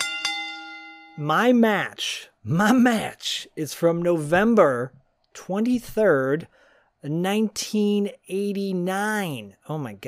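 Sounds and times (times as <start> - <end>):
boxing ring bell struck: 0.0 - 1.4
speech: 1.2 - 10.0.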